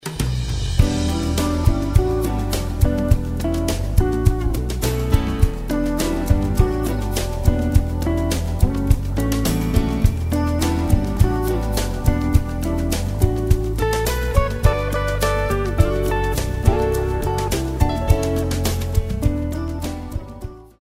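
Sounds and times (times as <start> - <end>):
smooth jazz music: 0.2 - 20.7.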